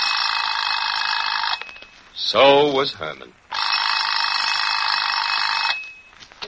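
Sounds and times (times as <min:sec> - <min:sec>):
electronic alarm clock ringing: 0:00.0 - 0:01.8, 0:03.5 - 0:06.0
speech: 0:02.3 - 0:03.4.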